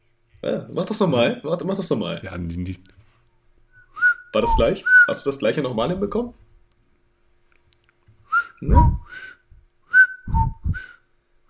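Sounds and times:
speech: 0:00.4 - 0:03.0, 0:04.4 - 0:06.4, 0:08.6 - 0:09.3
person whistling with the mouth: 0:03.7 - 0:05.1, 0:08.3 - 0:11.4.

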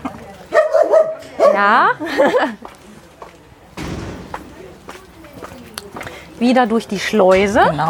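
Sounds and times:
speech: 0:01.5 - 0:02.7, 0:06.4 - 0:07.8
laughter: 0:01.8 - 0:02.8
voices: 0:02.7 - 0:07.5
door slamming shut: 0:03.7 - 0:05.5.

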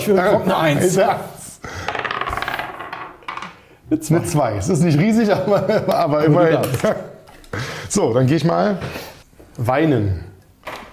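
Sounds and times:
speech: 0:00.0 - 0:01.8, 0:03.9 - 0:07.1, 0:07.9 - 0:10.3
die rolling across a surface: 0:01.9 - 0:03.5.

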